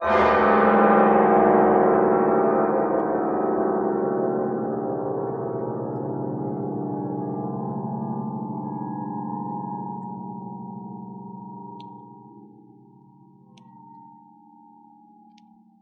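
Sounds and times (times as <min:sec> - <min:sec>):
horror dissonant piano stab: 0:00.0 - 0:12.2.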